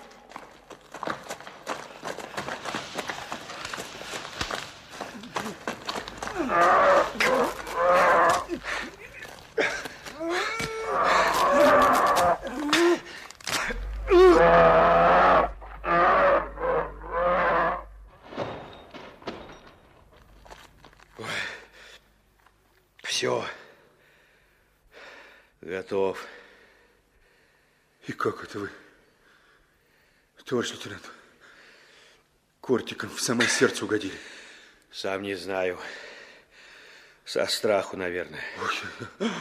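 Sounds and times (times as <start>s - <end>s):
bear roaring and groaning: 6.3s - 8.7s, 10.2s - 18.1s
speech: 30.6s - 31.1s, 32.9s - 34.4s, 35.0s - 36.0s, 37.3s - 39.3s.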